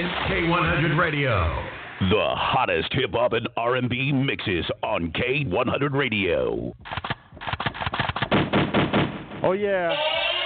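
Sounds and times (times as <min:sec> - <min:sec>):
speech: 0:00.0 - 0:07.1, 0:09.4 - 0:10.2
gunfire sound effect rapid shots: 0:06.8 - 0:09.5.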